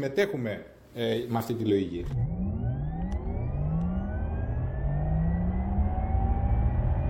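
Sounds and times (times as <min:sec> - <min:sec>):
speech: 0:00.0 - 0:02.4
synthetic whir of a Taycan electric sports car accelerating: 0:02.0 - 0:07.0.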